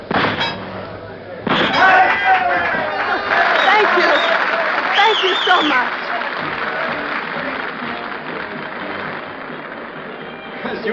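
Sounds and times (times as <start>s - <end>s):
scattered cheers: 1.6s - 10.9s
large vaudeville theater audience applauding a rifle sharpshooting act: 2.0s - 10.9s
bright whistle: 3.6s - 5.9s.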